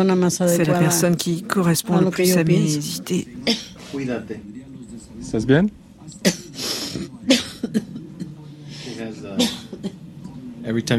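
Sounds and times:
speech: 0.0 - 4.6, 5.3 - 6.4, 10.6 - 10.9
woman coughing harshly: 3.4 - 3.8, 7.3 - 8.0, 9.4 - 10.0
short breathy pauses: 8.5 - 9.1.

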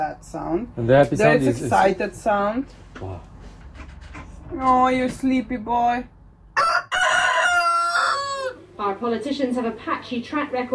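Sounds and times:
speech: 0.0 - 3.3, 4.5 - 6.7, 8.8 - 10.7
rooster crowing: 6.6 - 8.7.

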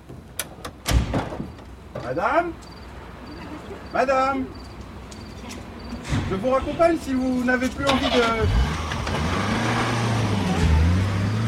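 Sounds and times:
speech: 2.0 - 2.8, 3.9 - 4.6, 6.1 - 8.7
car engine accelerating to pull away: 7.6 - 11.4.

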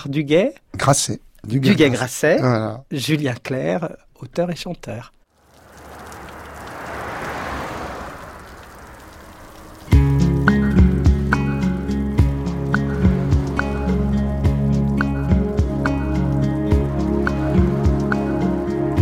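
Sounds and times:
speech: 0.0 - 5.2
steady rain falling: 5.3 - 19.0
music with sustained tones: 10.0 - 19.0.

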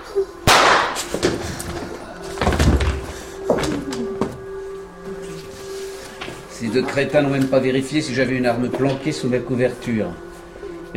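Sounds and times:
faint steady hum: 0.0 - 10.9
clattering knocks and bumps of chair and bodies on the floor: 1.2 - 4.4
loud heavy thud of person and chair falling onto the floor: 2.4 - 3.7
speech: 6.7 - 10.3.

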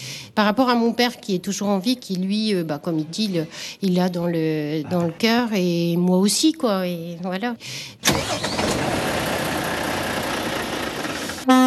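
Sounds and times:
speech: 0.4 - 9.1
truck engine rumbling: 8.0 - 11.6.

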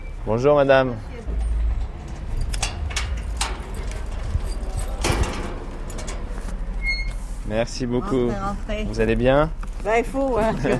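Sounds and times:
steady low outdoor rumble: 0.0 - 10.7
speech: 0.2 - 1.1, 7.5 - 10.7
metal gate scraping clank: 1.4 - 7.2
metal gate opened with clacks and rattling latch: 1.7 - 6.3.

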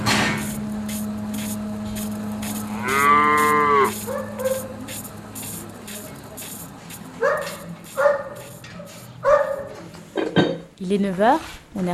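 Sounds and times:
steady low mechanical hum: 0.0 - 11.9
herd of dairy cows mooing at early-morning milking time: 2.4 - 4.6
speech: 10.9 - 11.9.

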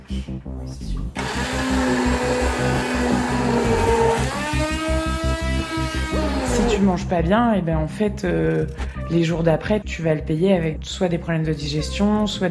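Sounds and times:
speech: 0.1 - 4.4, 6.8 - 12.4
kitchen blender motor whirring: 1.2 - 6.8.

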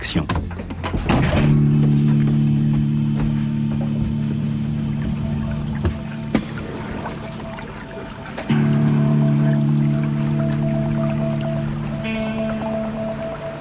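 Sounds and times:
low droning engine hum: 0.6 - 13.5
small stream flowing with a constant rushing babble: 3.7 - 13.5.

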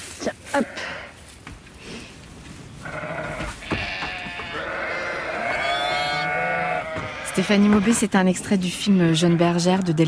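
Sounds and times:
speech: 0.6 - 1.0, 7.4 - 10.0
several sheep bleating: 2.8 - 10.0.

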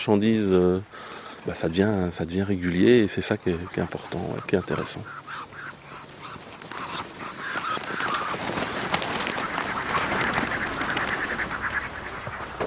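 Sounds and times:
speech: 0.0 - 5.5
farm ducks flapping their wings: 3.5 - 12.6.

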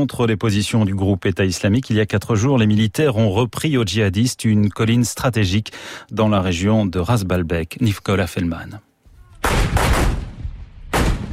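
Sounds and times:
speech: 0.0 - 10.2
artillery fire shelling jihadist positions in the mountains along the Syrian border: 9.4 - 11.3.

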